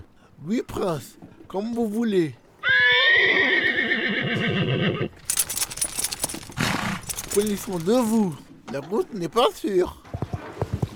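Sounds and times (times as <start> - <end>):
speech: 0.4 - 2.4, 4.4 - 5.4, 7.4 - 10.1
horse neighing: 2.6 - 8.2
horse hoof clatter and shuffling: 5.1 - 10.4.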